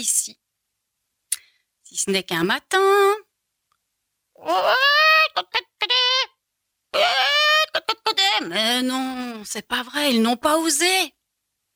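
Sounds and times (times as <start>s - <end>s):
speech: 0.0s - 0.4s, 2.0s - 3.3s, 4.4s - 5.6s, 8.4s - 11.2s
frightened hen squawking and clucking: 4.4s - 6.4s, 7.0s - 9.4s.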